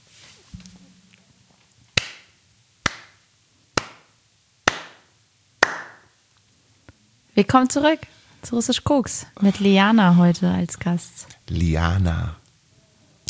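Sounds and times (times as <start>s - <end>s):
sharp hand claps: 2.0s - 3.2s, 3.8s - 6.1s
speech: 7.4s - 12.4s.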